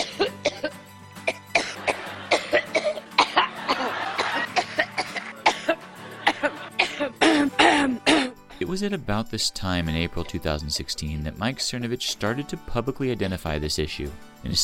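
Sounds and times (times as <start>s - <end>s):
person coughing harshly in a prolonged fit: 0.0s - 0.7s, 1.3s - 8.6s
raspy strained throat clearing: 0.0s - 0.7s, 1.3s - 8.4s
laughter: 1.8s - 7.7s, 10.2s - 12.6s
speech: 8.7s - 14.6s.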